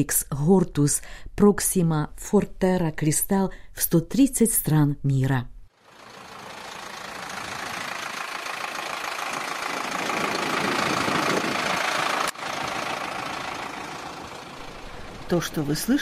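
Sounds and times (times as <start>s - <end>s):
speech: 0.0s - 5.5s, 15.3s - 16.0s
modern tractor engine running: 5.8s - 16.0s.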